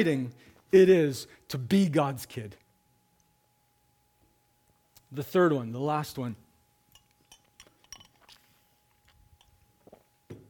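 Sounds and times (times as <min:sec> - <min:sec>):
speech: 0:00.0 - 0:02.6, 0:05.1 - 0:06.4
glass clinking: 0:06.9 - 0:10.0
person sipping a drink with mouth and swallowing noises: 0:07.4 - 0:10.2.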